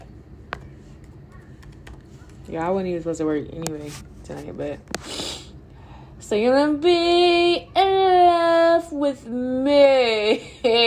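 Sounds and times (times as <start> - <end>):
low hum: 0.0 - 10.8
computer keyboard typing at work: 1.4 - 2.5
speech: 2.5 - 5.2, 6.3 - 7.8, 8.8 - 10.8.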